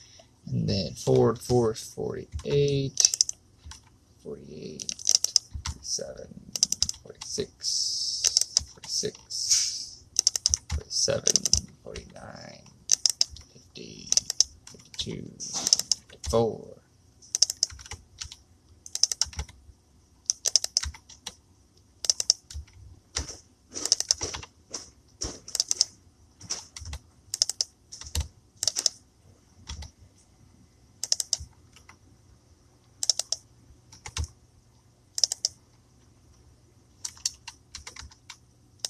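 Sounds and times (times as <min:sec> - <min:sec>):
faint low hum: 0:00.0 - 0:38.8
speech: 0:00.7 - 0:03.2, 0:04.2 - 0:05.0, 0:05.8 - 0:08.2, 0:09.0 - 0:09.6, 0:11.0 - 0:12.7, 0:15.0 - 0:16.8
computer keyboard keys clicking: 0:02.3 - 0:03.9, 0:04.8 - 0:07.4, 0:08.2 - 0:09.1, 0:10.2 - 0:12.2, 0:12.9 - 0:13.5, 0:14.1 - 0:15.0, 0:15.6 - 0:16.4, 0:17.3 - 0:19.6, 0:20.3 - 0:21.4, 0:22.0 - 0:24.5, 0:25.5 - 0:29.0, 0:29.6 - 0:29.9, 0:31.0 - 0:32.0, 0:33.0 - 0:34.4, 0:35.2 - 0:35.6, 0:37.0 - 0:38.8.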